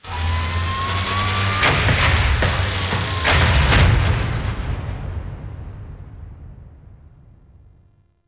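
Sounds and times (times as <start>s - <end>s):
ship extraction docking: 0.0s - 5.2s.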